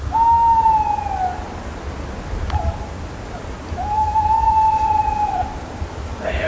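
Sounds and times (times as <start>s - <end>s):
bird giving long steady whistled calls: 0.0s - 1.5s, 2.5s - 2.9s, 3.8s - 5.6s
constant hiss: 0.0s - 6.4s.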